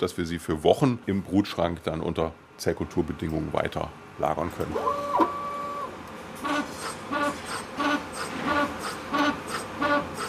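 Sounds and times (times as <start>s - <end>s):
speech: 0.0s - 5.2s
3D bioprinter humming and whirring: 3.9s - 10.2s.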